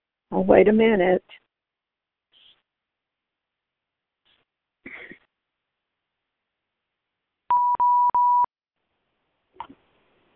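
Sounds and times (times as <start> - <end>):
speech: 0.3 - 1.4
telephone line tone after a dropped call: 7.5 - 8.5.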